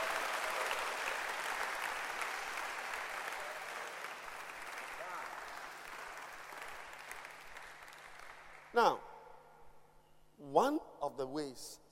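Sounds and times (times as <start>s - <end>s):
audience clapping in dense applause: 0.0s - 8.8s
speech: 8.8s - 9.0s, 10.5s - 11.9s.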